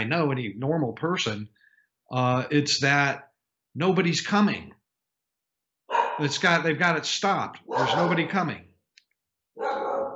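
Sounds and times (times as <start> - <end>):
speech: 0.0 - 4.8, 6.2 - 8.7
dog giving a drawn-out bark: 5.9 - 6.4, 7.6 - 8.4, 9.6 - 10.1.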